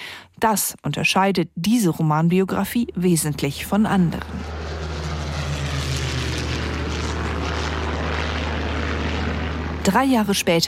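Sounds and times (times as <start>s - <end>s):
speech: 0.4s - 4.6s, 9.8s - 10.6s
propeller plane radial engine starting and droning: 2.5s - 10.6s.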